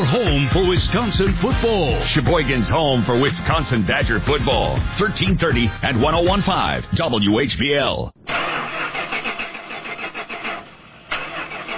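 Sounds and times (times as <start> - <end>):
speech: 0.1 - 8.4
car engine cranking but failing to start: 8.2 - 11.7.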